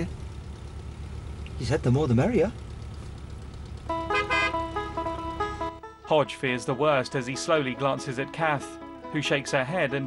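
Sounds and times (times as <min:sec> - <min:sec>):
car engine low rumble as car pulls up: 0:00.0 - 0:10.0
speech: 0:01.6 - 0:02.6, 0:06.1 - 0:10.0
car horn quick bright toots: 0:03.9 - 0:05.8.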